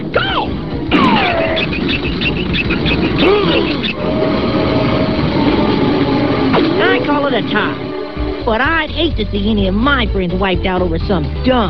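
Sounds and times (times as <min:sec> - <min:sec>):
sliding whistle-like tones and squealing metallic pitches: 0:00.9 - 0:09.1
loud train rumbling past with heavy roar: 0:02.2 - 0:10.4
speech: 0:07.3 - 0:11.6.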